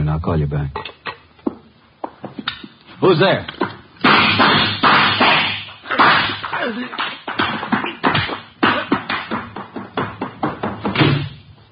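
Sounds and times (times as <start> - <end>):
speech: 0.2 - 1.0, 3.0 - 3.6, 6.6 - 7.1
loud thuds and bangs like doors being slammed shut: 4.0 - 11.6.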